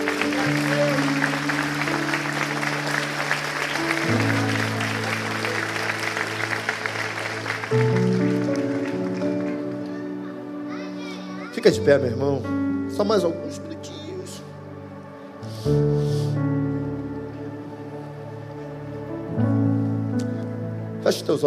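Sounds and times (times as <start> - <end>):
crowd clapping steadily and loudly: 0.0 - 11.6
sustained keyboard chords that shift pitch: 0.0 - 21.4
speech: 11.7 - 13.7, 15.6 - 16.0.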